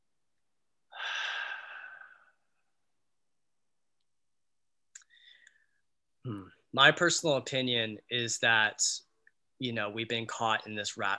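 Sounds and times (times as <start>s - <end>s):
short quieter breathy sound: 0.9s - 2.6s
long deep airy breath: 0.9s - 2.7s, 5.0s - 5.8s
speech: 6.3s - 11.1s.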